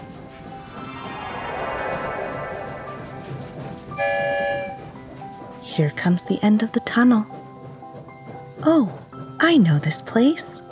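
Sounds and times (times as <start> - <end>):
train rolling with a steady dense rumble: 0.0 - 7.1
loud sustained train whistle: 4.0 - 4.8
speech: 5.8 - 7.4, 8.7 - 10.6.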